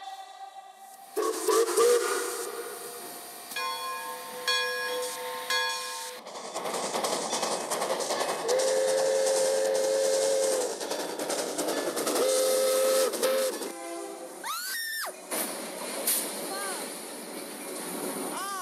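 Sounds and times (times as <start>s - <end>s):
loud train rumbling and clattering past: 1.0s - 18.6s
steam train whistle blasting: 1.1s - 6.2s, 8.5s - 10.7s, 12.2s - 15.1s.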